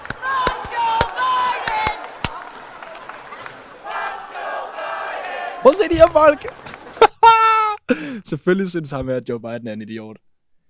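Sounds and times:
crowd clapping out of rhythm: 0.0 - 7.1
noisy background of cheering voices: 0.0 - 7.8
speech: 5.6 - 6.7, 7.9 - 10.2
laughter: 5.8 - 8.0.

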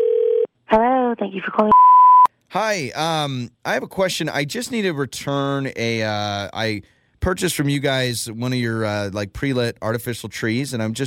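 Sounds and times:
electronic telephone ringback tone during an outgoing call: 0.0 - 0.5
speech: 0.7 - 1.8, 2.5 - 11.0.

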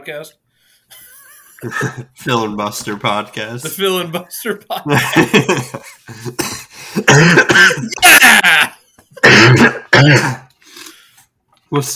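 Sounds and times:
speech: 0.0 - 8.7, 9.3 - 10.4, 11.7 - 11.9
laughter: 0.9 - 2.2, 3.9 - 9.2
person coughing: 6.2 - 10.5.

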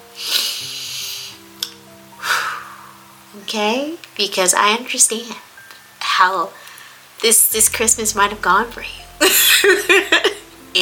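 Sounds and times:
gentle sustained music tones: 0.0 - 10.8
deep slow breathing: 2.2 - 3.1
speech: 3.4 - 5.5, 6.2 - 6.6, 7.2 - 10.2.

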